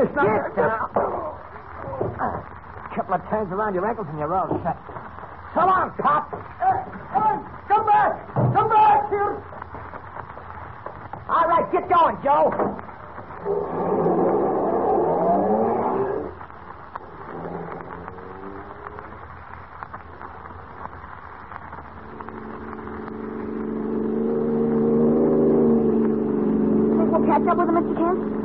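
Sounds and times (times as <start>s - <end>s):
speech: 0.0s - 1.2s, 2.2s - 9.9s, 11.3s - 13.9s
car engine revving and driving fast: 13.4s - 19.4s, 21.2s - 28.4s.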